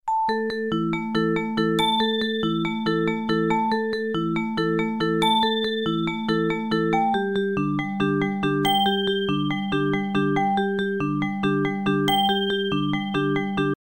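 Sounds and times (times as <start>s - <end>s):
bells: 0.2s - 13.8s.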